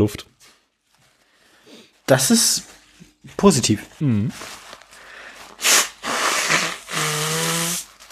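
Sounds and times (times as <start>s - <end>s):
speech: 0.0s - 0.3s, 2.1s - 4.6s
person with a blocked nose sneezing: 5.6s - 7.8s
rushing nasal blasts with a honking tone: 5.6s - 7.8s.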